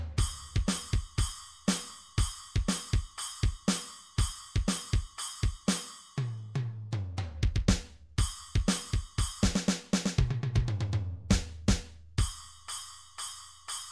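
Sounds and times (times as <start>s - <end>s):
rock MIDI drums: 0.2s - 6.0s, 7.3s - 12.4s.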